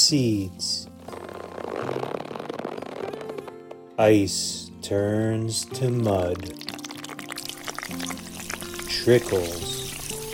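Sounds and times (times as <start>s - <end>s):
speech: 0.1s - 0.9s, 4.0s - 6.7s, 9.0s - 9.8s
coffee pouring into a cup: 6.4s - 10.3s.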